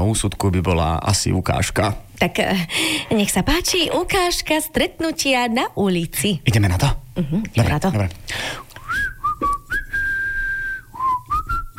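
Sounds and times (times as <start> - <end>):
speech: 0.0 - 8.6
person whistling a lilting tune while walking: 8.8 - 11.7.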